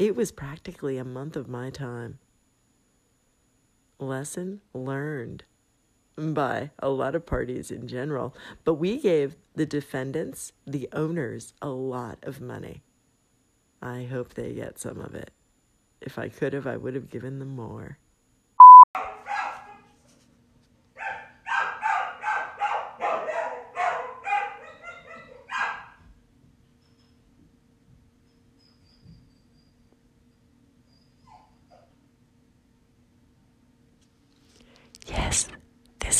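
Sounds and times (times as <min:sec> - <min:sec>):
speech: 0:00.0 - 0:02.3, 0:04.0 - 0:05.5, 0:06.2 - 0:12.9, 0:13.8 - 0:15.4, 0:16.0 - 0:18.0
short electronic beep: 0:18.6 - 0:18.9
dog shut in a bathroom barking and whimpering: 0:19.0 - 0:20.0, 0:21.0 - 0:26.0, 0:31.0 - 0:32.0.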